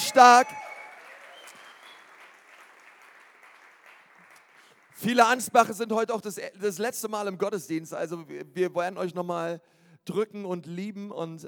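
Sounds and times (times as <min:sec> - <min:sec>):
church audience whooping: 0:00.0 - 0:03.0
church audience clapping at a Sunday service: 0:00.0 - 0:05.6
speech: 0:00.1 - 0:00.6, 0:05.0 - 0:11.4.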